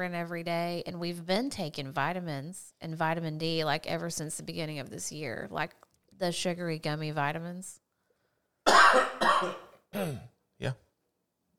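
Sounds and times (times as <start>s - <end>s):
speech: 0.0s - 7.8s, 8.7s - 10.8s
person coughing into the microphone: 8.7s - 10.4s.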